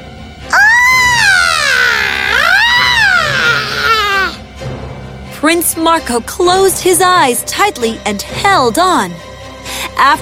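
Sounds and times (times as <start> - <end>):
loud piercing screaming: 0.5 - 4.4
speech: 5.4 - 9.3, 10.0 - 10.1.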